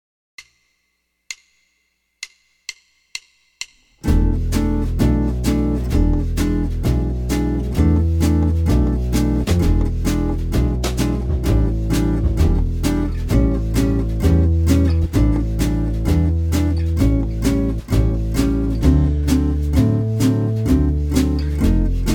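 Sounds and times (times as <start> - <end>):
jazz guitar in E major: 4.0 - 22.1.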